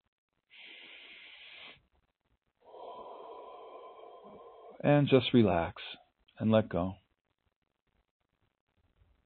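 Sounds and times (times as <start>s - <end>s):
long slow deep breaths: 0.5s - 1.9s, 2.6s - 4.9s
speech: 4.8s - 7.0s.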